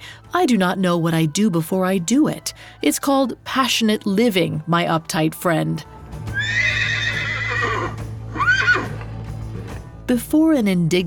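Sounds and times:
speech: 0.3 - 6.9, 10.1 - 11.0
horse neighing voiced as a centaur rearing up and bellowing: 6.3 - 9.2.

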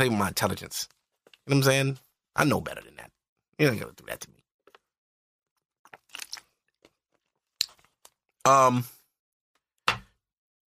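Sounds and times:
speech: 0.0 - 4.4, 8.4 - 9.0
person sipping water: 5.8 - 8.2.

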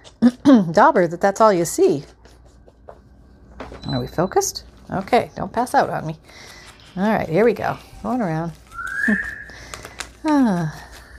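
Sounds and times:
speech: 0.2 - 2.2, 3.9 - 9.4, 10.2 - 10.8
pet bird whistling: 8.7 - 9.6.

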